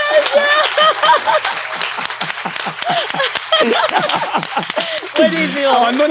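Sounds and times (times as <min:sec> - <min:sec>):
audience applause for a guest: 0:00.0 - 0:06.0
laughter: 0:00.0 - 0:06.0
voices calling out and cheering: 0:00.0 - 0:06.0
speech: 0:05.2 - 0:06.0.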